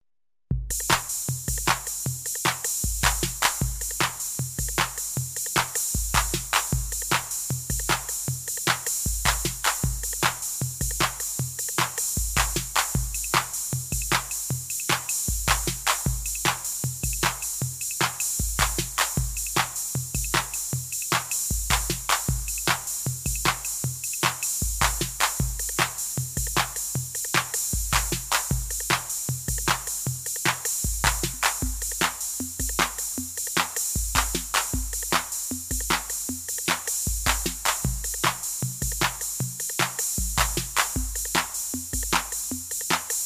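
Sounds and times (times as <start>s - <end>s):
tom-tom drum set: 0.5s - 43.2s.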